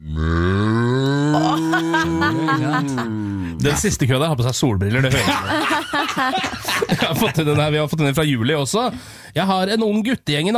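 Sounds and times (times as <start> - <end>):
human voice imitating a desperate cow mooing: 0.0 - 3.6
laughter: 1.2 - 3.6, 5.0 - 7.9
speech: 1.8 - 10.5.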